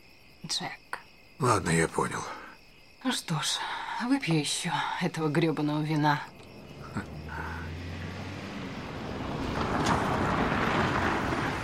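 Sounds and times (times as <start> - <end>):
speech: 0.5 - 2.4, 3.0 - 7.2
road and tire noise: 5.7 - 11.6
car pulling up to a house, engine rumble: 6.2 - 11.6.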